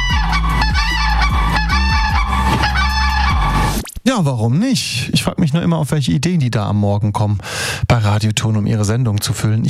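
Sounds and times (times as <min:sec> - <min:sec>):
pair of common cranes trumpeting calls: 0:00.0 - 0:03.8
speech: 0:04.1 - 0:09.6.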